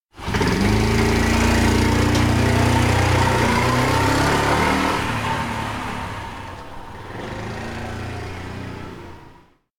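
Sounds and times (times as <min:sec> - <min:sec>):
bike departing: 0:00.2 - 0:09.4.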